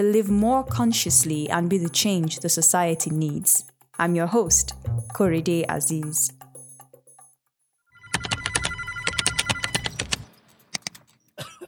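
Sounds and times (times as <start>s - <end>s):
speech: 0.0s - 6.4s
office telephone ringing: 7.9s - 10.3s
keyboard tapping: 8.1s - 11.0s.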